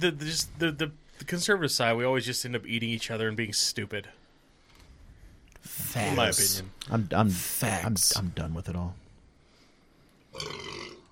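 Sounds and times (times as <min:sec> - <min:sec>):
speech: 0:00.0 - 0:04.2, 0:05.6 - 0:09.0, 0:10.4 - 0:10.7
burp: 0:10.3 - 0:11.1.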